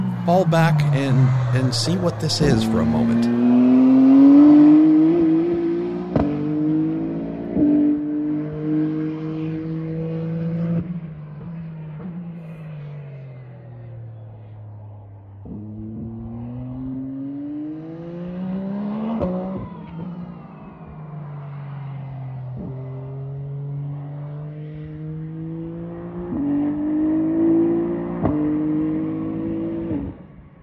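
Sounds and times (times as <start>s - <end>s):
2021 LMH Toyota hypercar engine revving through gear changes: 0.0s - 30.5s
speech: 0.2s - 3.5s.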